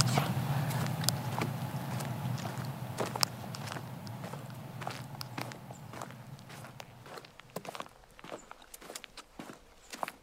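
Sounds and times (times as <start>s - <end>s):
low rumble: 0.0s - 7.9s
footsteps of people walking on a forest path through fallen trees: 0.0s - 10.2s.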